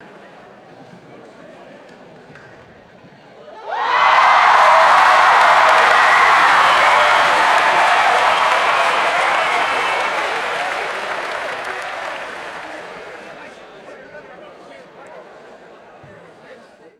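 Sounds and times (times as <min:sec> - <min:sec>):
crowd cheering at sporting event: 0:03.6 - 0:14.0.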